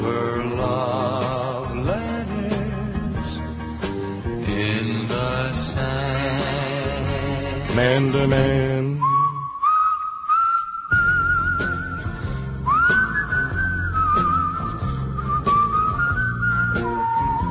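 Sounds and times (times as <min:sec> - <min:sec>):
instrumental backing of bass and chords: 0:00.0 - 0:09.7, 0:10.8 - 0:17.4
speech: 0:08.0 - 0:08.8
person whistling a smooth sustained tune with gliding notes: 0:09.0 - 0:17.4.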